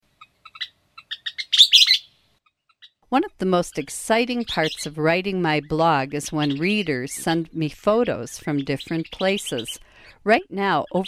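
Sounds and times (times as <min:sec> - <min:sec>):
Western kingbird calls: 0:00.2 - 0:03.0, 0:04.3 - 0:07.4, 0:08.0 - 0:09.8
speech: 0:03.1 - 0:11.0.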